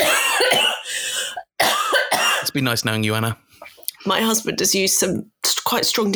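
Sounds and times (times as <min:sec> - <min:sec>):
harsh raspy coughing: 0:00.0 - 0:02.6
speech: 0:02.6 - 0:06.1.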